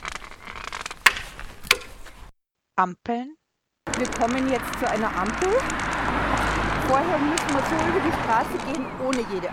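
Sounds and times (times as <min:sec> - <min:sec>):
white cane tapping and scraping along the ground: 0:01.1 - 0:02.0
speech: 0:02.7 - 0:06.1, 0:06.9 - 0:09.5.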